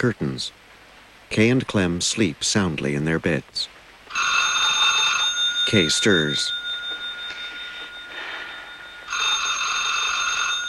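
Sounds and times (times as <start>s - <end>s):
speech: 0.0s - 0.7s, 1.3s - 4.4s, 5.7s - 6.6s
telephone ringing at night: 4.1s - 10.6s.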